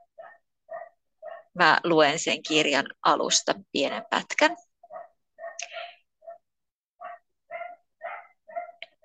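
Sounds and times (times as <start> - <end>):
dog barking: 0.2 - 1.6, 4.8 - 6.4, 7.0 - 9.0
speech: 1.6 - 4.7.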